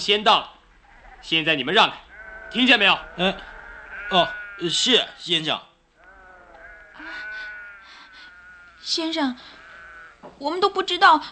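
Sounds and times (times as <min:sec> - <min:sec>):
speech: 0:00.0 - 0:00.6, 0:01.2 - 0:03.5, 0:04.1 - 0:05.7, 0:08.8 - 0:09.6, 0:10.2 - 0:11.3
flock of sheep bleating at a well: 0:00.7 - 0:05.3, 0:06.0 - 0:10.2.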